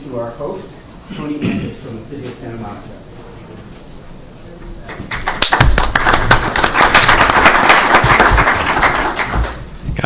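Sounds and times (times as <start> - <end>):
speech: 0.1 - 3.6
room full of people clapping: 5.1 - 9.6.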